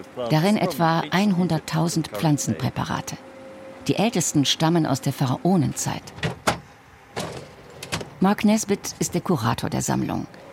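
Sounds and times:
speech: 0:00.1 - 0:06.4, 0:08.2 - 0:10.4
metal cabinet drawer being pulled open: 0:06.0 - 0:08.2.

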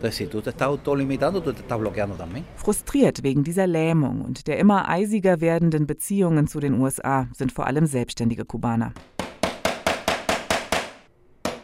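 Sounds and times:
speech: 0:00.0 - 0:09.1
hammer driving nails into a wooden frame in Cuba: 0:09.0 - 0:11.6.

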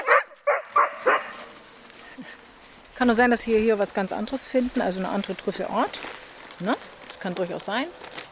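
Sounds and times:
excited Lagotto Romagnolo truffle-hunting dogs barking: 0:00.0 - 0:01.5
speech: 0:03.0 - 0:08.0.

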